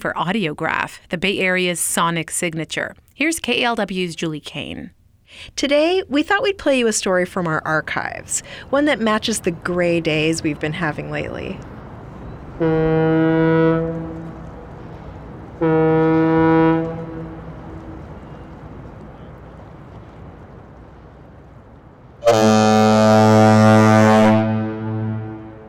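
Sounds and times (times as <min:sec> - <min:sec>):
speech: 0:00.0 - 0:11.8, 0:12.6 - 0:14.2, 0:15.6 - 0:17.0, 0:22.2 - 0:23.8
bridge foghorns sounding during a test: 0:12.6 - 0:18.6, 0:22.2 - 0:25.6.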